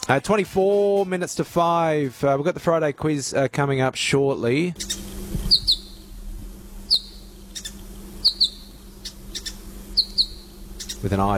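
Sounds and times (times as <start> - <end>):
speech: 0.1 - 5.8, 11.0 - 11.3
low steady hum: 3.3 - 11.3
New Holland honeyeaters calling with sharp high chirps: 4.8 - 11.3.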